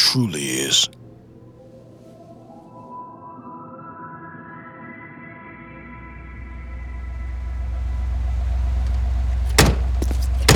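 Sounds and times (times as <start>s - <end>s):
speech: 0.1s - 1.0s
taxi engine idling with a steady low rumble: 6.2s - 10.5s
taxi doors clunking shut as passengers get out: 8.7s - 10.5s.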